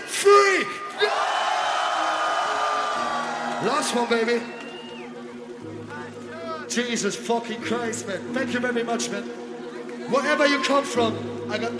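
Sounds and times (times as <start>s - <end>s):
large concert crowd screaming: 0.6s - 5.4s
speech: 3.6s - 4.7s, 6.8s - 9.4s, 10.1s - 11.7s.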